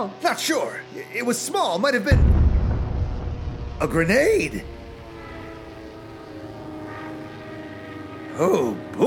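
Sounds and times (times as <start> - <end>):
speech: 0.0 - 2.4, 3.8 - 4.8, 8.4 - 9.0
biplane propeller engine droning as the aircraft passes overhead: 2.2 - 9.0.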